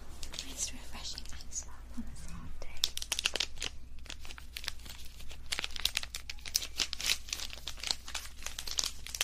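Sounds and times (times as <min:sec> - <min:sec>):
ice pop plastic wrapper crinkling and crackling: 0:00.1 - 0:01.5, 0:02.7 - 0:09.2
ice pop wrapper tearing: 0:02.7 - 0:09.2.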